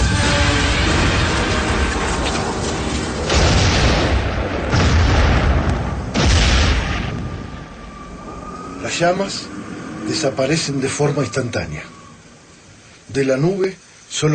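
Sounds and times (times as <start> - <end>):
anti-aircraft cannon firing: 0.0 - 8.1
speech: 9.0 - 12.0, 13.1 - 14.3.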